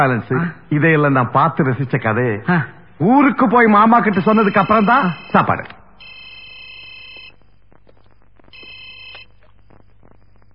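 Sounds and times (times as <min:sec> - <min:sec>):
speech: 0:00.0 - 0:06.1
low hum: 0:00.0 - 0:10.5
telephone ringing with a bright trilling electronic tone: 0:04.0 - 0:07.4, 0:08.5 - 0:09.5.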